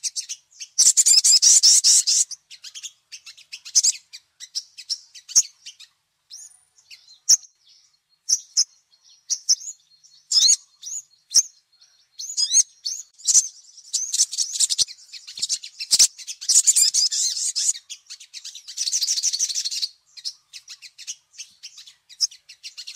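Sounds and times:
little spiderhunter giving a dry buzzy rattle, chirps, whistles and twittering: 0.0s - 6.6s, 12.3s - 22.9s.

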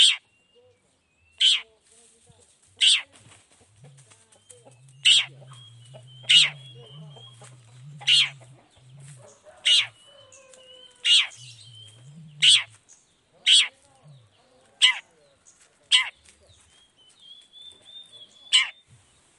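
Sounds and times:
faint low hum: 0.0s - 19.3s
long-tailed shrike rasping notes: 3.7s - 12.8s, 13.4s - 15.0s.

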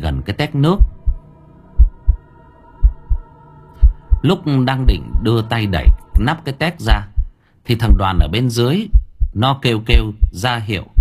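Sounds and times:
speech: 0.2s - 0.9s, 4.2s - 7.1s, 7.7s - 10.9s
heart pounding: 0.8s - 1.2s, 1.8s - 10.9s.

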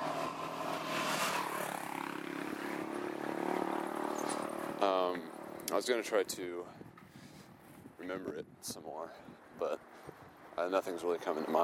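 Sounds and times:
motorcycle approaching fast along a path: 0.0s - 5.7s
speech: 5.1s - 6.9s, 8.0s - 9.9s, 10.6s - 11.6s.

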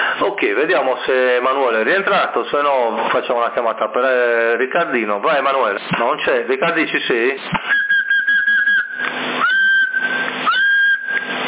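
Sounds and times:
steady radio hiss: 0.0s - 9.4s
speech: 0.2s - 7.7s
person whistling into a CB radio microphone: 7.6s - 11.4s.

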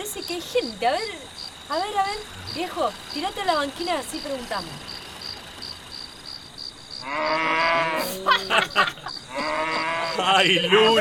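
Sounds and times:
faint steady hum: 0.0s - 10.9s
speech: 0.1s - 4.9s, 7.0s - 10.9s
cow mooing near a dusty field by the roadside: 7.0s - 8.4s, 9.3s - 10.9s
laughter: 7.8s - 10.9s.

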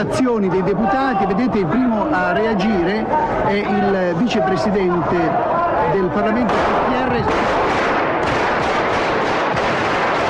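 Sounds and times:
speech: 0.0s - 7.8s
explosions during an attempted coup: 6.5s - 10.2s
rapid gunfire during an attempted coup: 6.5s - 10.2s.

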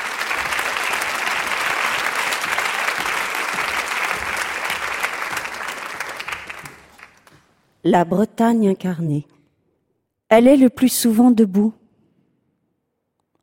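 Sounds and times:
audience applauding to welcome a guest: 0.0s - 7.4s
speech: 7.8s - 9.3s, 10.3s - 11.8s.

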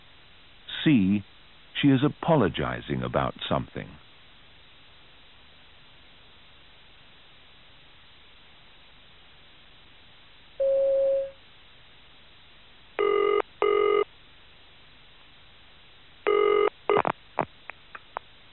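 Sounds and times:
speech: 0.8s - 4.0s
telephone ringing: 13.0s - 14.1s, 16.3s - 17.1s.

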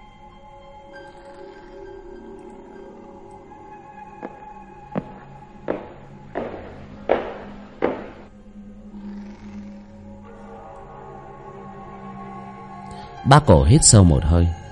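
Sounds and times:
light footsteps climbing wooden stairs at night: 4.2s - 8.3s
speech: 13.3s - 14.6s.

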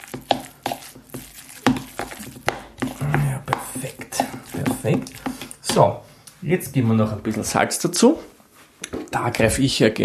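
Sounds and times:
spoon stirring a butter spread mixture in a bowl: 0.0s - 5.9s
speech: 4.8s - 5.2s, 5.8s - 8.3s, 9.1s - 10.0s.

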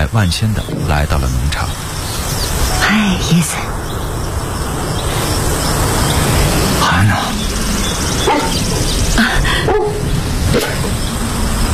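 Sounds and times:
constant noisy background: 0.0s - 11.7s
speech: 0.1s - 1.8s, 2.9s - 3.8s, 7.0s - 7.4s
dog barking and yipping: 8.2s - 8.6s, 9.7s - 10.0s.

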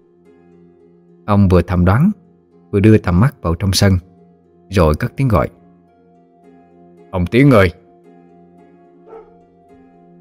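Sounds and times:
speech: 1.3s - 4.1s, 4.7s - 5.6s, 7.1s - 7.8s
dog barking: 9.0s - 9.5s.

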